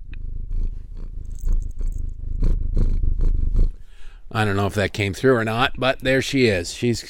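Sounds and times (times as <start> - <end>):
domestic cat purring: 0.0 - 5.1
speech: 4.4 - 7.0.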